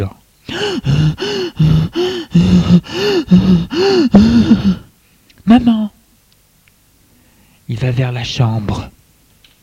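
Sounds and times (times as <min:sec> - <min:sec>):
speech: 0:00.0 - 0:04.8, 0:05.5 - 0:06.0, 0:07.7 - 0:09.0
woman moaning in a bedroom: 0:00.5 - 0:04.9.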